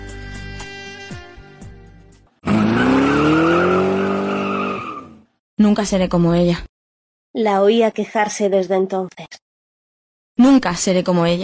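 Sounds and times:
car engine roaring as the car accelerates away: 2.4 - 5.2
tire squeal: 2.4 - 5.3
speech: 5.6 - 6.7, 7.3 - 9.4, 10.4 - 11.4.

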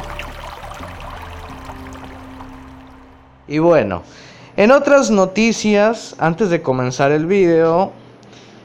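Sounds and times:
water pouring into a cup or kettle while preparing tea: 0.0 - 3.3
speech: 3.5 - 8.0.

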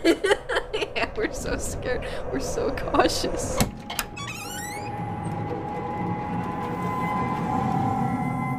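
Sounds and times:
laughter: 0.0 - 1.7
dull rumbling background: 0.0 - 8.5
speech: 1.4 - 3.8
door creaking open: 3.6 - 6.5.

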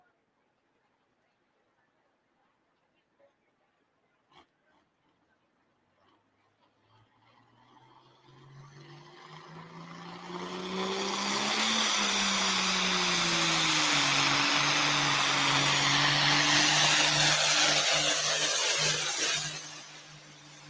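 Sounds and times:
White Farm Equipment super farm class tractor engine roaring under load at a tractor pull in Iowa: 4.2 - 20.6.

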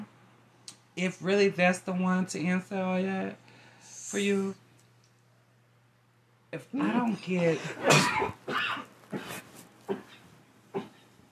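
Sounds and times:
speech: 1.0 - 3.4, 4.1 - 4.6, 6.5 - 10.0
person coughing harshly: 6.8 - 10.2, 10.8 - 11.0.

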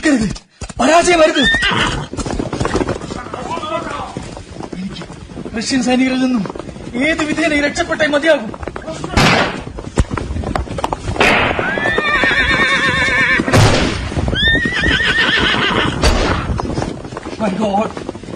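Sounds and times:
horse hooves galloping: 0.0 - 18.3
speech: 0.1 - 2.4, 5.6 - 9.1, 17.4 - 18.1
wounded horse neighing while fleeing soldiers: 1.2 - 2.3, 11.3 - 13.6, 14.3 - 16.1.

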